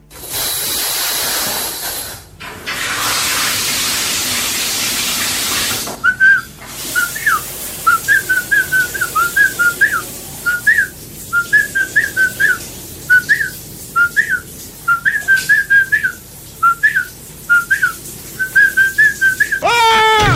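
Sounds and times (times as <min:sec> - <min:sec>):
steady hiss: 0:00.1 - 0:19.9
man whistling a tune in the bath: 0:06.0 - 0:20.2.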